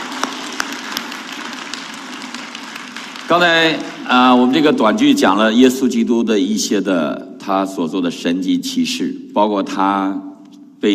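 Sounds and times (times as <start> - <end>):
room full of people applauding: 0.0 - 5.0
speech: 3.3 - 10.9.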